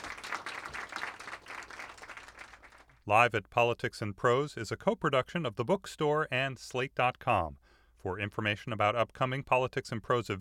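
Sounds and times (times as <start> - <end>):
audience applauding steadily: 0.0 - 2.9
speech: 3.1 - 10.3.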